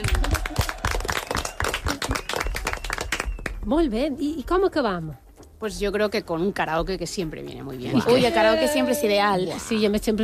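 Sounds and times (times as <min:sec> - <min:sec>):
applause from a small group: 0:00.0 - 0:03.6
speech: 0:03.7 - 0:10.2.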